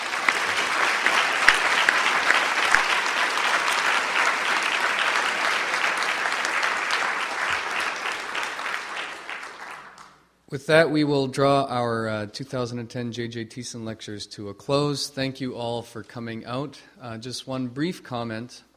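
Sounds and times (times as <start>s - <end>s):
audience applause at the close of a lecture: 0.0s - 10.2s
speech: 10.5s - 18.7s.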